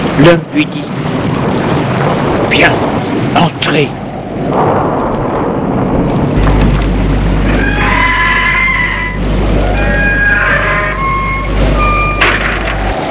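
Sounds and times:
steady loud rain or rumbling noise: 0.0s - 13.0s
speech: 0.2s - 0.9s, 2.5s - 4.0s
horse neighing while led toward a castle entrance: 7.5s - 12.2s.

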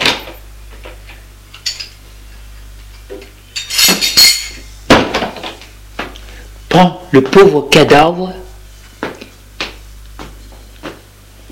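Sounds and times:
plate and cutlery clinking as a plate is hurriedly put away: 3.6s - 4.7s
speech: 6.8s - 8.4s.

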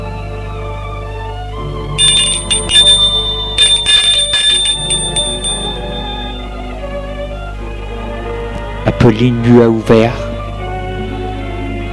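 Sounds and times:
bell ringing at a house door: 2.0s - 6.7s
steady low hum: 2.0s - 7.5s
speech: 9.0s - 10.3s.

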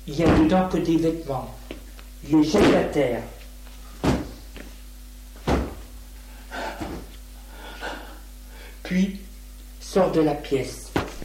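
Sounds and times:
speech: 0.1s - 1.6s, 2.2s - 3.4s, 8.9s - 9.3s, 9.9s - 10.8s
wooden dresser drawers being yanked open with thuds: 0.2s - 0.7s, 4.0s - 4.4s, 5.4s - 5.9s.

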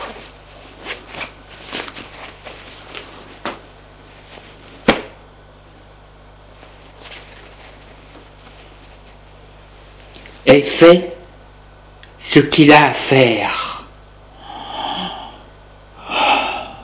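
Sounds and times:
fabric rustling as trousers are pulled down: 0.0s - 5.2s, 6.5s - 10.0s
speech: 10.5s - 11.1s, 12.4s - 13.6s.

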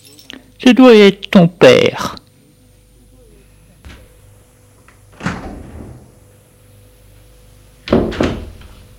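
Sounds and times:
keys rattling in a lock: 0.0s - 0.5s
speech: 0.6s - 2.2s
door opening with heavy wooden thunks: 5.1s - 6.0s, 7.9s - 8.7s.

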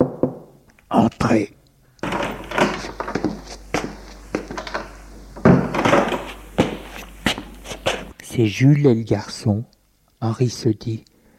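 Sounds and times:
speech: 0.9s - 1.6s, 8.4s - 11.1s
footsteps approaching along a corridor: 2.0s - 8.2s.

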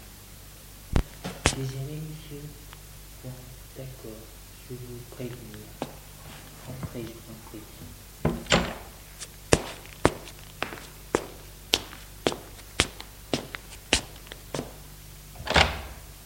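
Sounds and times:
sharp footsteps on a hard floor: 1.0s - 1.7s, 5.8s - 7.2s, 7.8s - 14.8s
speech: 1.6s - 8.0s
door sound: 5.4s - 9.0s, 15.3s - 16.1s
door creaking open: 8.2s - 8.9s, 15.4s - 16.1s.

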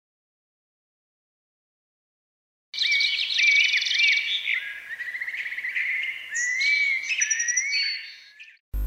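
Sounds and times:
bird singing: 2.8s - 8.8s.

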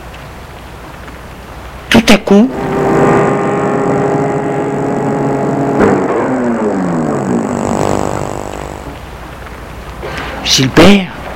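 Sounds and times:
speech: 2.1s - 2.8s, 10.6s - 11.1s
black car engine humming as it pulls up and stops: 2.2s - 10.0s.

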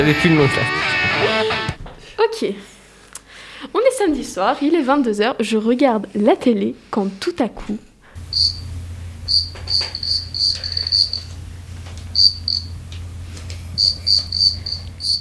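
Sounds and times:
speech: 0.0s - 1.3s, 2.3s - 2.7s, 3.6s - 8.7s, 9.4s - 11.4s, 13.8s - 15.1s
cricket chirping inside a radiator: 8.2s - 15.1s
steady low hum: 8.2s - 15.1s.

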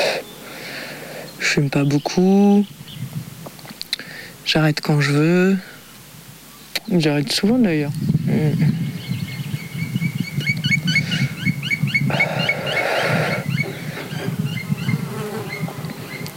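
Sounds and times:
bees buzzing outdoors in spring: 0.0s - 3.4s, 8.2s - 16.3s
birds chirping and twittering: 0.0s - 16.3s
speech: 1.5s - 2.8s, 4.5s - 5.7s, 6.8s - 8.8s.

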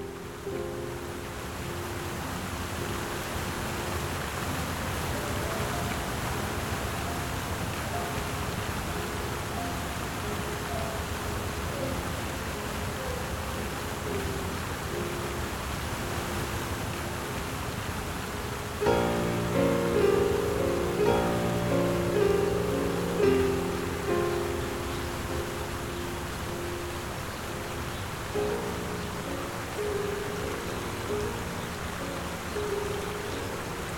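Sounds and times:
soft sustained musical tones: 0.0s - 33.9s
waterfall bubbling over rocks: 0.0s - 33.9s.

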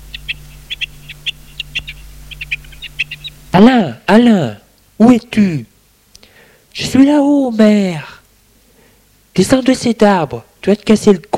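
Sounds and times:
birds singing in a garden: 0.0s - 5.4s
faint low hum: 0.0s - 11.3s
speech: 3.6s - 5.7s, 6.8s - 8.1s, 9.4s - 11.3s.

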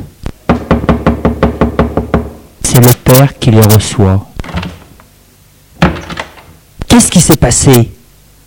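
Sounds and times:
firm loud knocking on the door of a house: 0.4s - 2.4s
speech: 2.8s - 4.3s, 7.0s - 7.9s.

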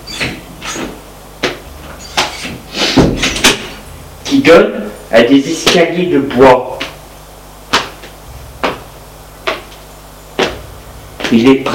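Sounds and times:
door creaking and clunking open: 0.0s - 1.0s, 1.8s - 3.5s
speech: 4.3s - 6.8s, 11.3s - 11.7s.

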